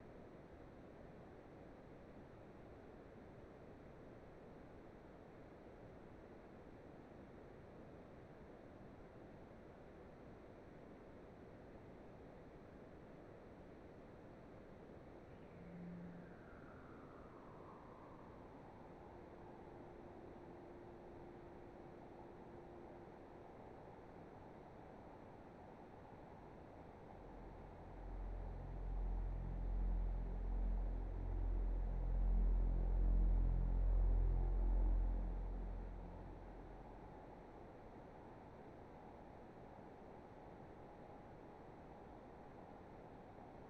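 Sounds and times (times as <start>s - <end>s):
ambience: 14.9s - 43.6s.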